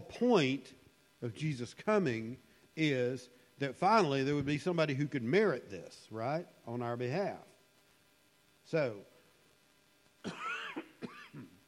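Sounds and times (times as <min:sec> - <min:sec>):
speech: 0:00.1 - 0:07.5, 0:08.7 - 0:09.1
person coughing with rough throaty bursts: 0:10.2 - 0:11.6.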